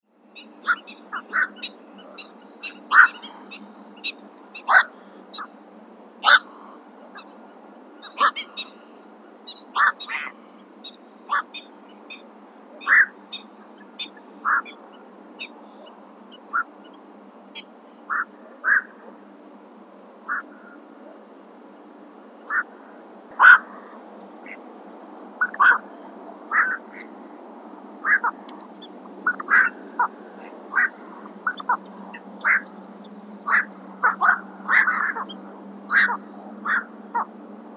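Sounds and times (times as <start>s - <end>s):
Squacco heron Ardeola ralloides calling: 0.4s - 5.5s, 6.2s - 7.3s, 8.0s - 14.8s, 22.5s - 37.0s.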